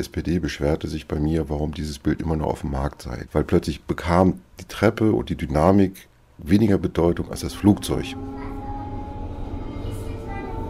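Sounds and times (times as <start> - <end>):
speech: 0.0 - 8.5
S-Bahn commuter train rumbling at Lichterfelde West station in Berlin-Zehlendorf: 7.1 - 10.6.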